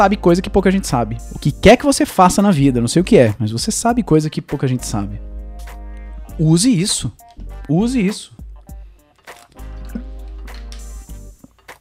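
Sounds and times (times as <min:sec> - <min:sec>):
speech: 0:00.0 - 0:05.3, 0:06.4 - 0:08.4
small wet clicks from drinking: 0:09.3 - 0:11.7
person sipping and swallowing water: 0:09.6 - 0:10.4.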